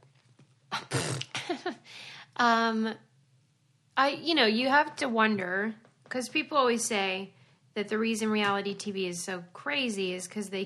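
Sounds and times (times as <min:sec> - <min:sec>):
person clearing throat: 0:00.7 - 0:01.5
speech: 0:02.4 - 0:03.1, 0:04.0 - 0:10.6.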